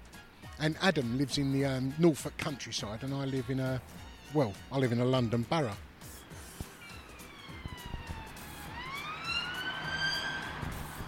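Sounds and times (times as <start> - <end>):
speech: 0.6 - 5.9
steady traffic rumble in a London borough: 5.8 - 11.0
police car siren passing by in a London borough: 6.8 - 11.0.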